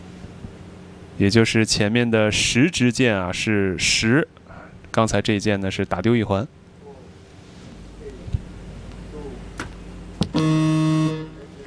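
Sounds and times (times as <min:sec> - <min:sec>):
low indoor hum: 0:00.0 - 0:11.6
speech: 0:01.2 - 0:06.6
loud electronic shot-clock buzzer blaring: 0:10.3 - 0:11.6.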